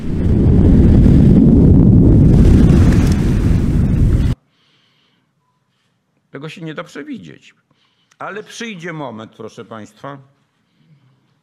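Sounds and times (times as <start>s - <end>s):
volcanic eruption roaring: 0.0s - 4.4s
speech: 6.5s - 10.4s.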